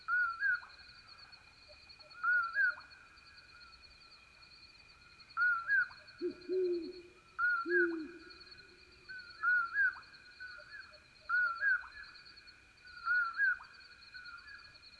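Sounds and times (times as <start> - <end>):
insect drone: 0.0 - 14.9
great horned owl low soft hoots: 5.4 - 8.8.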